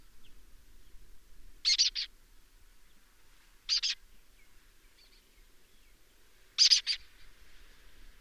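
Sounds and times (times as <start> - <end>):
faint hiss: 0.0 - 8.1
lesser kestrel grating rasping calls: 1.6 - 2.1, 3.7 - 4.0, 6.6 - 7.1.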